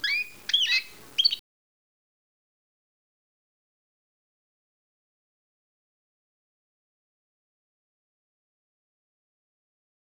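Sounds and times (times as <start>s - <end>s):
coast bird: 0.0s - 1.4s.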